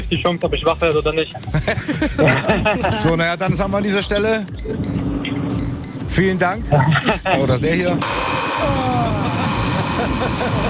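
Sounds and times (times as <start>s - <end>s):
speech: 0.1s - 5.1s, 6.2s - 9.2s, 10.0s - 10.6s
laughter: 1.3s - 3.3s, 6.6s - 7.9s, 8.6s - 10.6s
alarm clock beeping: 4.6s - 6.1s.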